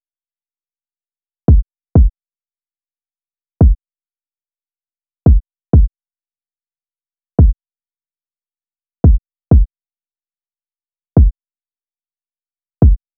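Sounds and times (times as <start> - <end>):
kick drum loop: 1.5 - 2.1, 5.3 - 5.9, 9.1 - 9.7, 12.9 - 13.1.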